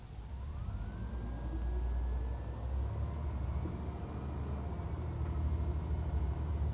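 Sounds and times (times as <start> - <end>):
Osaka city bus engine pulling away from stop: 0.3 - 6.7.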